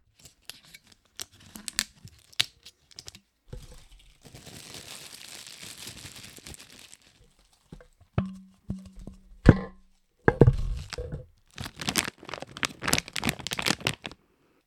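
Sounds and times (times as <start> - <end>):
plastic medicine or sweets packaging being handled and squeezed: 0.2 - 7.9, 10.4 - 14.2.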